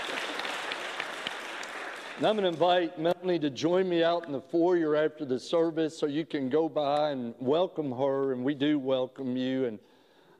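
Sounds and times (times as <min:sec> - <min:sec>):
crowd applauding: 0:00.0 - 0:02.9
speech: 0:02.2 - 0:10.3.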